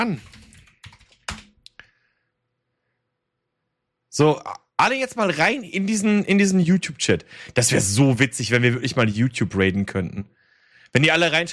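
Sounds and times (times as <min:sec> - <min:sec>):
speech: 0:00.0 - 0:00.4, 0:04.2 - 0:11.5
typing on a computer keyboard: 0:00.0 - 0:01.7.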